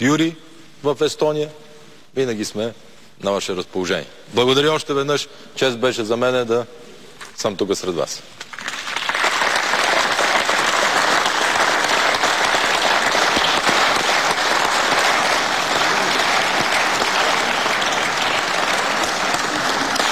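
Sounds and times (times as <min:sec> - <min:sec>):
speech: 0:00.0 - 0:08.6
large audience applause after a speech: 0:08.5 - 0:20.0.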